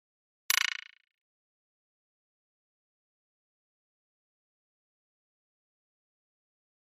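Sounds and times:
pop up element electric tap: 0:00.5 - 0:01.0.

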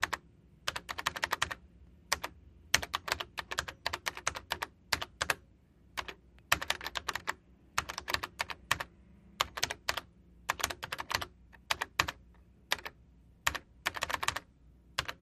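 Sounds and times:
computer keyboard typing: 0:00.0 - 0:15.1.

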